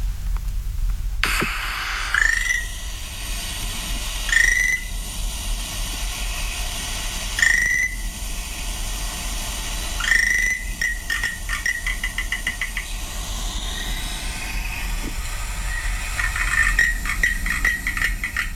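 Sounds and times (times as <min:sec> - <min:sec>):
steady noisy hiss: 0:00.0 - 0:18.5
frog calls on Amami Oshima: 0:02.1 - 0:02.7, 0:04.2 - 0:04.9, 0:07.3 - 0:08.1, 0:10.0 - 0:14.7, 0:15.6 - 0:18.5.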